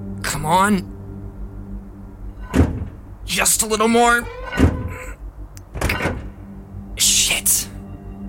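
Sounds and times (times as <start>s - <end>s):
low steady rumble: 0.0s - 8.2s
speech: 0.4s - 1.0s, 3.3s - 4.7s
handle of an old door with a rusted keyhole forced and clunking: 2.4s - 3.0s, 4.4s - 5.0s, 5.7s - 6.4s.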